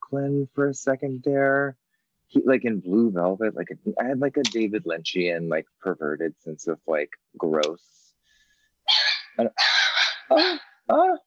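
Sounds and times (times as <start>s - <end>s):
speech: 0.1s - 8.0s, 8.9s - 11.2s
dog whining yelps: 8.9s - 10.8s.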